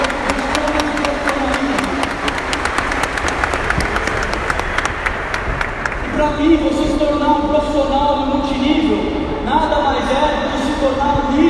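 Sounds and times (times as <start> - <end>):
audience applause: 0.0 - 6.1
speech: 6.2 - 11.4.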